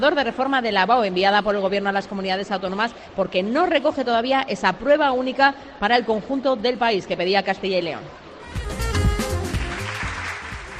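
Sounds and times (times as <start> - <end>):
speech: 0.0 - 8.2
crowd applauding at Valladolid city council presentation in Spain: 8.6 - 10.7.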